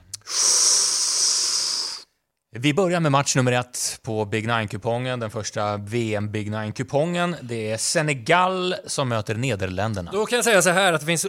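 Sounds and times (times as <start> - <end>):
man taking a deep breath: 0.2 - 2.2
speech: 2.5 - 11.2.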